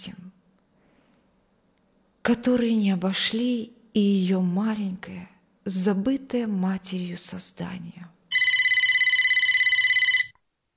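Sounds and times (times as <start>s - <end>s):
speech: 2.3s - 8.1s
telephone ringing shrilly: 8.3s - 10.3s.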